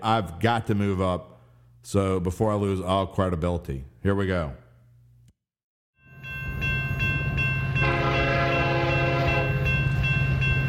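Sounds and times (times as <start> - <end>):
speech: 0.0 - 4.6
train engine rumbling with a low continuous drone: 6.2 - 10.6
loud sustained train horn blast: 7.8 - 9.7.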